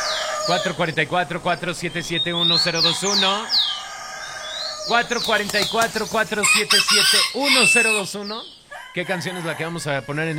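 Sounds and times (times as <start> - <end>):
rooster crowing: 0.0 - 0.8, 2.8 - 4.9, 6.4 - 10.3
speech: 0.5 - 3.8, 4.8 - 10.3.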